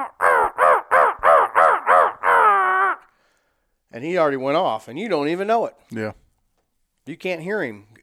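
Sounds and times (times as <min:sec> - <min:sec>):
speech: 0:00.0 - 0:00.2, 0:03.9 - 0:06.2, 0:07.1 - 0:08.0
crow calls blown on a handheld call by a turkey hunter: 0:00.0 - 0:03.2.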